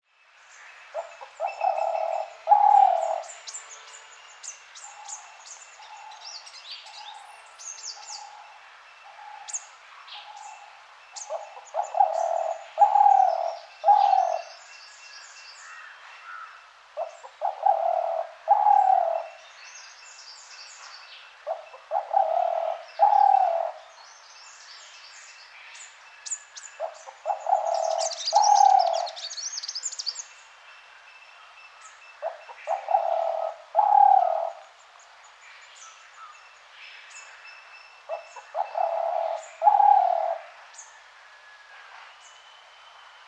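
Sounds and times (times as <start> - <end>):
spotted dove cooing: 1.0 - 3.4, 11.2 - 14.5, 17.0 - 19.4, 21.5 - 23.9, 26.8 - 29.2, 32.2 - 34.7, 38.1 - 40.6.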